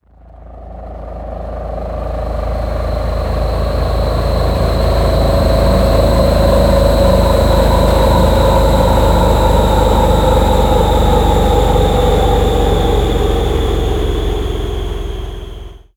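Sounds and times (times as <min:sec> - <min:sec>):
cargo spaceship passing by: 0:00.9 - 0:15.9.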